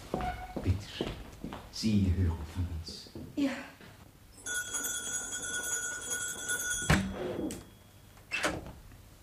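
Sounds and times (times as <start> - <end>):
door opening and closing: 0.2 - 0.7, 6.9 - 8.8
speech: 1.8 - 3.6
steady high ringing tone: 4.3 - 8.2.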